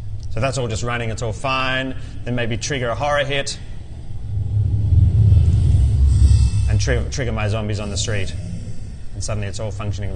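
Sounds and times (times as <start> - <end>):
speech: 0.4 - 3.7, 6.8 - 8.5, 9.2 - 10.1
street traffic ambience of passing cars: 3.8 - 9.2.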